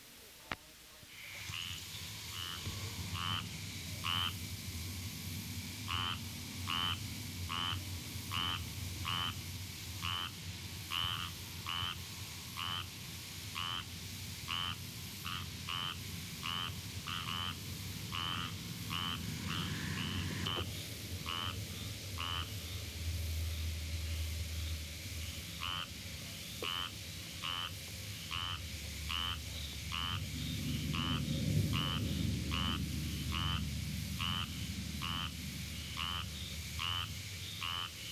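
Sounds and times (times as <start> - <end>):
low hum: 0.0 - 38.1
squirrel tree frog quack-like calls: 1.4 - 23.4, 24.1 - 38.1.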